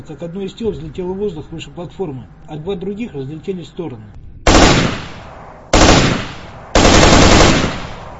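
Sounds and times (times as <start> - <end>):
speech: 0.0 - 4.2
automatic rifle gunfire: 4.5 - 8.1.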